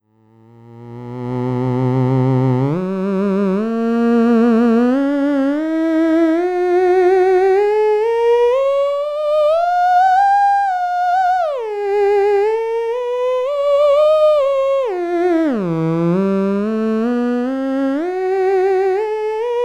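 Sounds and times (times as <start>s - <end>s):
theremin note: 0.7s - 19.6s.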